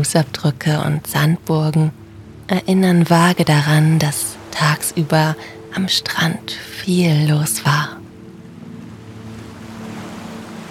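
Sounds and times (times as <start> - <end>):
speech: 0.0 - 8.0
ocean waves rushing onto a beach at night: 2.7 - 6.8, 7.4 - 10.7.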